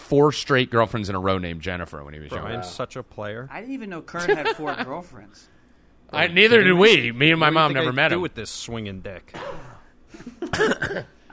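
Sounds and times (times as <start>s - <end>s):
speech: 0.1s - 11.2s
person coughing short rough coughs: 9.3s - 11.3s.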